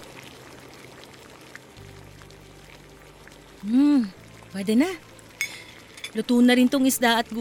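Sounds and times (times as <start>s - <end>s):
pot of sinigang soup with red snapper bubbling on a stove: 0.0s - 7.4s
speech: 3.6s - 5.1s, 6.1s - 7.4s.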